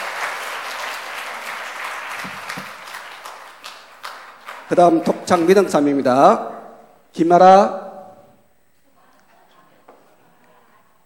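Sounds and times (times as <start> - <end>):
audience applauding: 0.0 - 5.6
speech: 4.7 - 7.8.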